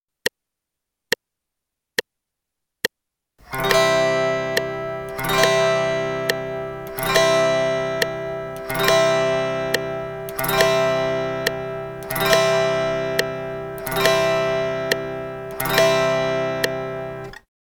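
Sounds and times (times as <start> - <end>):
guitar strumming quarter notes pattern in C: 3.4 - 17.4.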